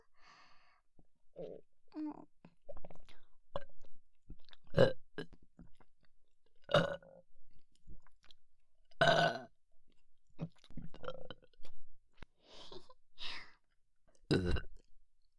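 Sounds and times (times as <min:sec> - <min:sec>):
speech: 0:01.4 - 0:02.3, 0:04.8 - 0:05.0
person burping close to the microphone: 0:09.0 - 0:09.5, 0:14.3 - 0:14.7.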